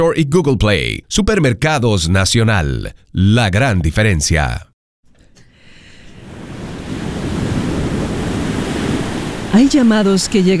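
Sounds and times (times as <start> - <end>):
speech: 0.0 - 4.7, 9.5 - 10.5
ocean surf crashing: 5.8 - 10.5.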